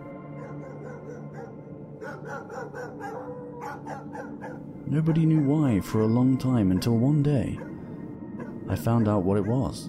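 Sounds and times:
wild dogs barking: 0:00.3 - 0:04.7, 0:06.7 - 0:07.8, 0:08.4 - 0:09.8
speech: 0:02.2 - 0:07.7, 0:08.7 - 0:09.8.

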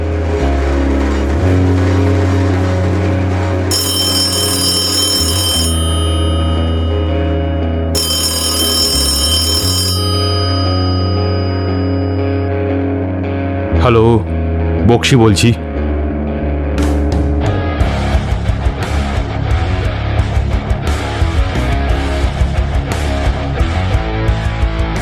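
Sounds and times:
loud sustained music: 0:00.0 - 0:25.0
telephone ringing on an outgoing call: 0:03.7 - 0:13.1
speech: 0:13.9 - 0:14.2, 0:15.0 - 0:15.6.

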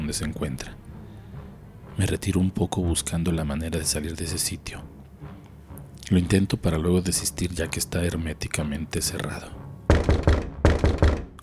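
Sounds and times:
speech: 0:00.1 - 0:00.9, 0:02.0 - 0:04.9, 0:06.0 - 0:10.9
heavy dry knocks on a solid door: 0:09.9 - 0:11.4.

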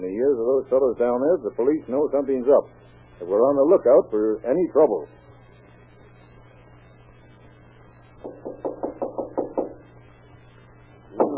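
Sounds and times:
speech: 0:00.0 - 0:05.2
low steady hum: 0:00.0 - 0:11.3
firm knocking on a door: 0:08.2 - 0:09.8.

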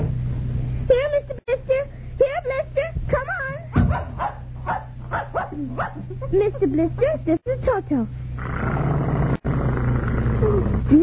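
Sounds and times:
low hum: 0:00.0 - 0:11.0
puppy yapping in short high barks: 0:03.8 - 0:06.1
speech: 0:06.1 - 0:08.8, 0:10.4 - 0:11.0.

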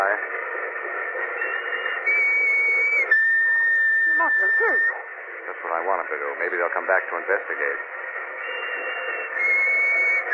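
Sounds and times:
hissy rumble: 0:00.0 - 0:10.3
shrill whistle blasts: 0:01.4 - 0:05.0, 0:08.4 - 0:10.3
speech: 0:04.4 - 0:08.0.

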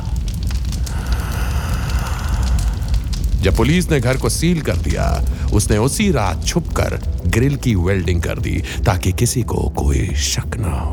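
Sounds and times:
gas explosion in a house rumbling roar: 0:00.0 - 0:08.8
crackling after a gas explosion in a house: 0:00.0 - 0:10.9
speech: 0:03.4 - 0:10.9.

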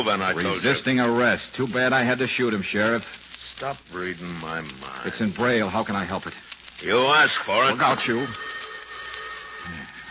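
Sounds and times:
speech: 0:00.0 - 0:08.6, 0:09.7 - 0:10.0
old-style telephone bell ringing: 0:07.7 - 0:10.0.

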